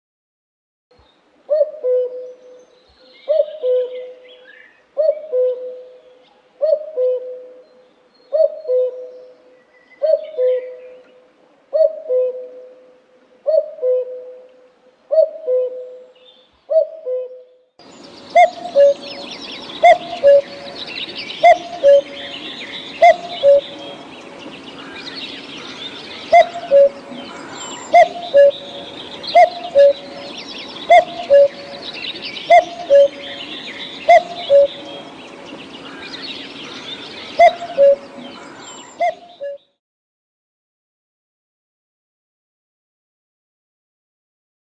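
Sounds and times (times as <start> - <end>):
common cuckoo calling: 1.5 - 39.7.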